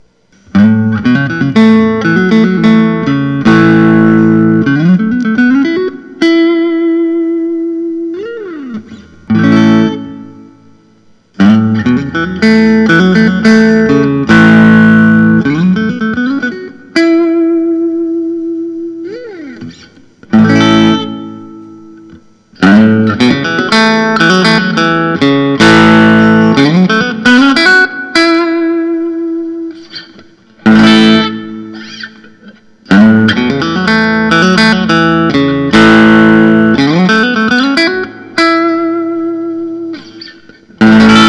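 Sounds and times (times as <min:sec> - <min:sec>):
vintage blonde Fender Telecaster electric guitar: 0:00.0 - 0:41.2.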